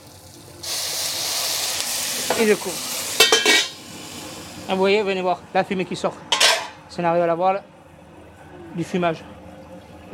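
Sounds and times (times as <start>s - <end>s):
splash of water sizzling in a hot covered pan of red mullet fillets: 0.0s - 4.8s
speech: 2.4s - 2.9s, 4.7s - 6.3s, 6.9s - 7.7s, 8.8s - 9.4s.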